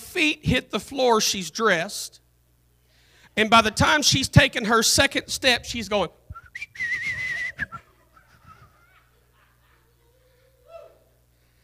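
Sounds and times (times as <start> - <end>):
faint noise: 0.0 - 11.6
speech: 0.2 - 2.2, 3.4 - 7.1
woman whistling cheerfully on getting up in the morning: 6.3 - 7.9
laughter: 7.7 - 11.1.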